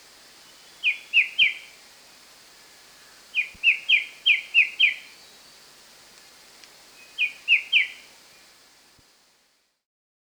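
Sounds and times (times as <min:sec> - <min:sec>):
white-browed shrike-babbler song of clear whistled notes: 0:00.4 - 0:01.7, 0:03.4 - 0:05.5, 0:07.0 - 0:08.4.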